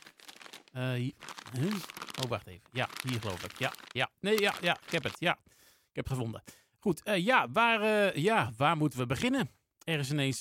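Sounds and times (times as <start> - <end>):
crumpled papers rustling in a bag: 0.0 - 5.3
speech: 0.8 - 10.3.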